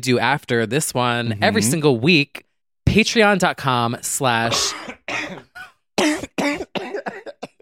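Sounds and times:
speech: 0.0s - 5.5s
person coughing: 4.5s - 7.6s.

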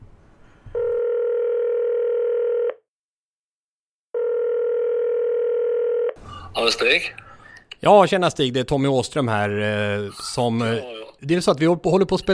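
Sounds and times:
telephone dial tone while calling someone: 0.8s - 2.8s, 4.2s - 6.2s
speech: 6.6s - 7.2s, 7.8s - 12.3s.

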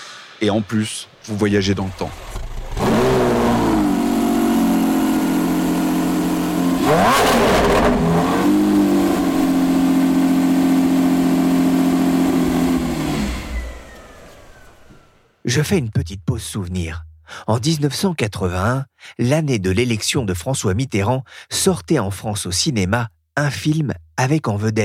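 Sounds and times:
speech: 0.4s - 2.4s, 6.9s - 7.2s, 15.5s - 24.8s
old collector car engine starting and revving: 1.6s - 14.6s.

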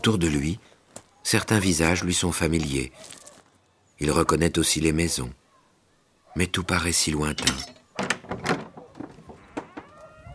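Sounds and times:
speech: 0.0s - 3.2s, 4.0s - 5.4s, 6.4s - 8.1s
door scraping as it is pushed open: 7.2s - 10.3s
wooden door knocking as it is pushed: 7.4s - 9.9s.

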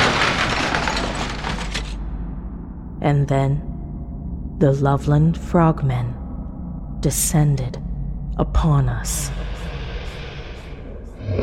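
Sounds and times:
car windshield glass shattering: 0.0s - 2.0s
speech: 3.0s - 3.7s, 4.6s - 6.2s, 7.0s - 7.8s, 8.4s - 9.5s, 11.3s - 11.4s.

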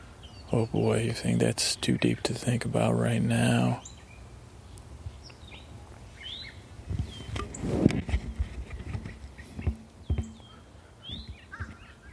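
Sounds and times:
birds chirping outdoors: 0.0s - 12.1s
speech: 0.5s - 4.0s
thuds and clopping sounds: 7.8s - 11.8s.

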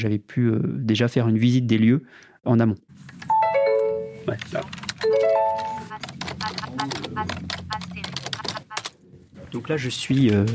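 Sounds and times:
speech: 0.0s - 3.3s, 4.2s - 5.2s, 9.5s - 10.5s
typing on an AZERTY keyboard plugged into a laptop: 4.4s - 8.9s.

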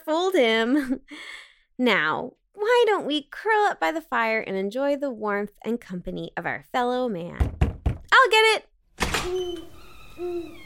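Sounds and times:
speech: 0.4s - 7.5s, 8.2s - 10.6s
owl hooting: 9.3s - 10.6s.

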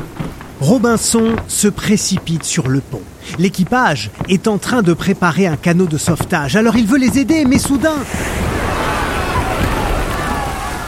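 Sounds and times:
speech: 0.6s - 8.6s
huge ocean wave crashing over a shipwrecked crew: 6.9s - 10.8s.

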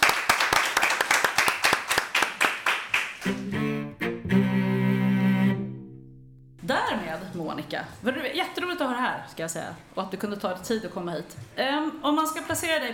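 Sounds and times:
audience applauding at an event in Almedalen: 0.0s - 3.4s
speech: 3.2s - 4.7s, 6.7s - 12.9s
burst of music with sustained tones: 3.2s - 6.6s.

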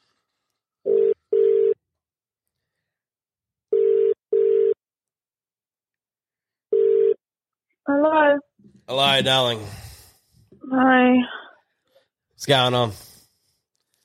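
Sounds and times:
telephone ringback tone in short double bursts: 0.9s - 1.8s, 3.7s - 4.8s, 6.7s - 7.2s
speech: 7.9s - 9.8s, 10.7s - 11.4s, 12.4s - 13.1s.

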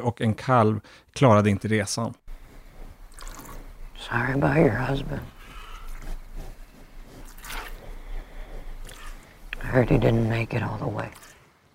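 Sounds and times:
speech: 0.0s - 2.2s, 4.0s - 5.4s, 9.7s - 11.3s
milk squirting from a cow's udder during milking: 2.3s - 11.4s.

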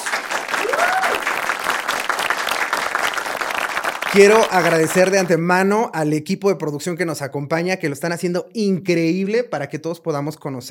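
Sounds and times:
room full of people applauding: 0.0s - 5.4s
speech: 4.1s - 10.6s.

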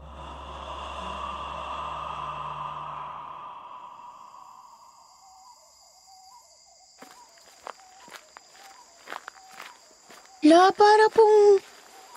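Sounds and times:
low rumbling drone: 0.0s - 5.9s
footsteps crunching as people walk in the dark: 7.0s - 12.1s
speech: 10.4s - 11.7s.

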